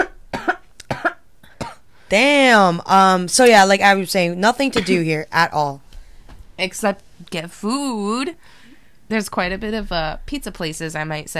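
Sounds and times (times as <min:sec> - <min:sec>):
harsh double-burst coughs: 0:00.0 - 0:01.8, 0:04.8 - 0:05.0
speech: 0:02.1 - 0:05.8, 0:06.6 - 0:11.3.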